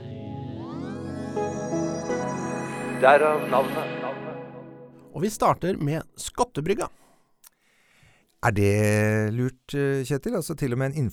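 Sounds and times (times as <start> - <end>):
rising synth swoop: 0.0 - 5.2
short musical jingle for a podcast segment: 0.0 - 5.2
speech: 3.0 - 4.0, 5.2 - 7.0, 8.4 - 11.1.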